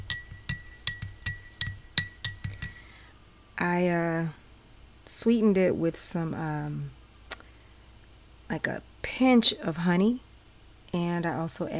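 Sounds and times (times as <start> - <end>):
spoon clinking against a small hot cup while stirring a hot drink: 0.0 - 2.9
speech: 3.6 - 4.4, 5.1 - 7.0, 8.5 - 10.3, 10.9 - 11.7.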